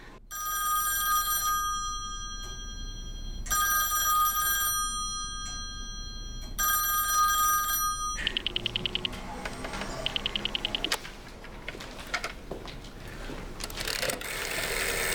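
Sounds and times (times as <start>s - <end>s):
telephone ringing in long buzzing bursts during a call: 0.3s - 11.0s, 12.1s - 15.1s.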